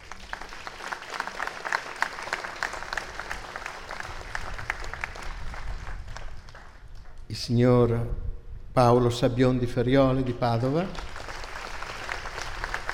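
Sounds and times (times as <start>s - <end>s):
room full of people clapping: 0.0s - 7.3s, 10.6s - 12.9s
speech: 7.3s - 8.2s, 8.8s - 11.1s.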